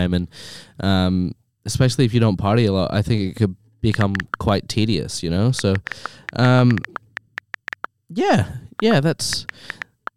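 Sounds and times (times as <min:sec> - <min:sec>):
speech: 0:00.0 - 0:07.0, 0:08.1 - 0:09.8
mobile phone taps as someone texts: 0:03.9 - 0:04.4, 0:05.6 - 0:07.9, 0:08.8 - 0:10.1.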